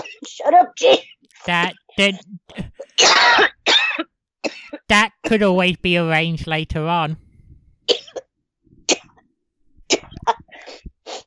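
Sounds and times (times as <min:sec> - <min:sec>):
speech: 0:00.2 - 0:03.5, 0:04.9 - 0:07.2
person coughing harshly: 0:02.1 - 0:04.8, 0:07.9 - 0:08.3, 0:09.9 - 0:10.6.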